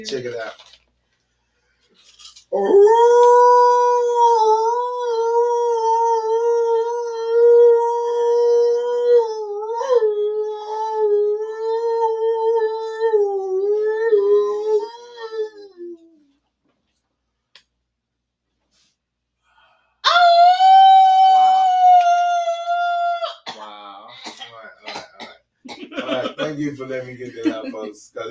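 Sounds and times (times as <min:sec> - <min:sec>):
speech: 0:00.0 - 0:00.8, 0:02.5 - 0:03.8, 0:26.7 - 0:28.2
person imitating an alpha male wolf howl: 0:02.5 - 0:16.2, 0:20.0 - 0:24.1
laughter: 0:25.8 - 0:28.1.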